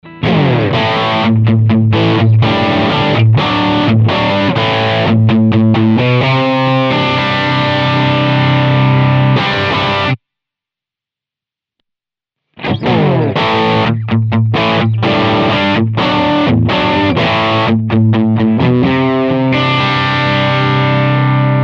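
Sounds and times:
distorted stack power amplifier: 0.0 - 10.4, 12.4 - 21.6.

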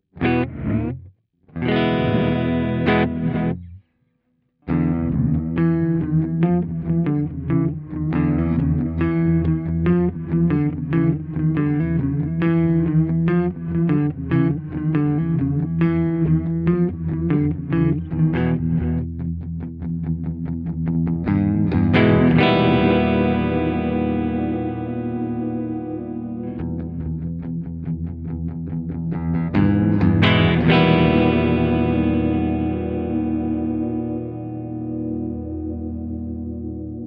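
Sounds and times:
guitar through a reverse reverb pedal: 0.0 - 3.8, 4.7 - 37.0.

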